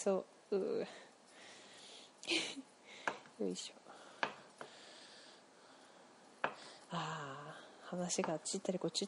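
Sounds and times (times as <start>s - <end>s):
speech: 0.0s - 1.1s, 2.3s - 2.7s, 3.4s - 3.8s, 6.9s - 9.0s
knife cutting konnyaku on a cutting board: 4.2s - 4.4s, 6.4s - 6.6s.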